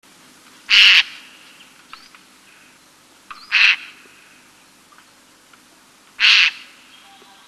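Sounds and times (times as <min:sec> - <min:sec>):
bird giving harsh hissing screeches: 0:00.7 - 0:01.4, 0:03.4 - 0:04.4, 0:06.2 - 0:06.8.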